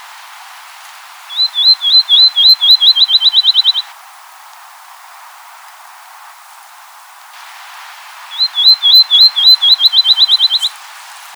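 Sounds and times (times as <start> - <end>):
quiet hiss: 0.0 - 11.3
field sparrow song of whistled notes accelerating into a trill: 1.3 - 3.9, 8.3 - 10.8.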